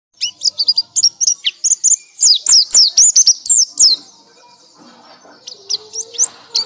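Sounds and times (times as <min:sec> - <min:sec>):
nightingale song of quick sweeping whistles: 0:00.2 - 0:04.0.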